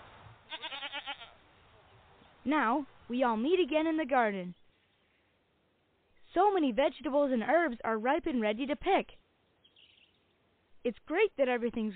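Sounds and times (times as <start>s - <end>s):
faint hiss: 0.0s - 11.9s
single goat bleating with a wavering quavering cry: 0.5s - 1.4s
speech: 2.4s - 4.6s, 6.3s - 9.2s, 10.8s - 11.9s.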